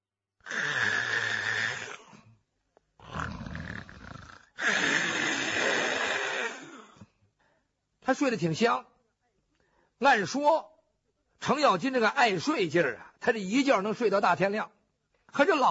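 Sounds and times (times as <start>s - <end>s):
storyteller imitating loud snoring with his voice: 0.4s - 2.2s, 3.0s - 6.9s
speech: 8.1s - 8.9s, 10.0s - 10.7s, 11.4s - 15.6s.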